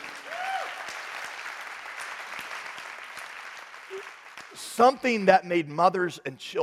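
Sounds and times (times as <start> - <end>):
audience applause: 0.0 - 5.0
speech: 4.0 - 6.6.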